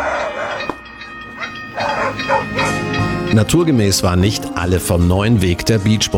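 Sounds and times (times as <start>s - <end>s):
dogs barking: 0.0s - 3.1s
speech: 3.3s - 6.1s.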